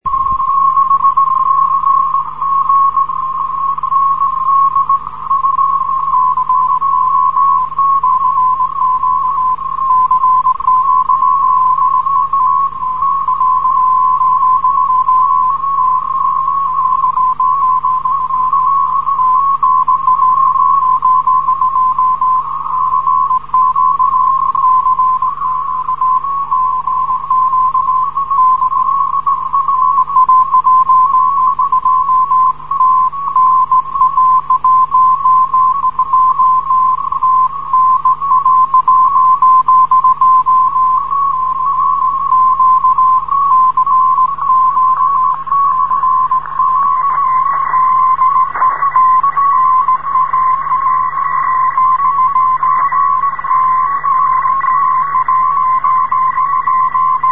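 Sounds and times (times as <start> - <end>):
morse code radio signal from Pointe Noire radio station: 0.0 - 57.3
radio interference: 40.0 - 57.3.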